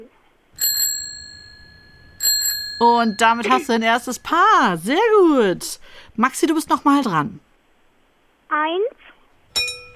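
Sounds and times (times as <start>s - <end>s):
bicycle bell ringing: 0.6s - 4.5s
speech: 2.8s - 7.5s, 8.5s - 9.0s.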